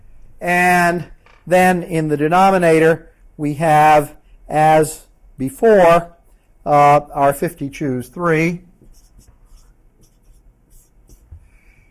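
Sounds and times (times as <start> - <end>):
speech: 0.4 - 8.7
pen strokes of handwriting: 8.8 - 11.4.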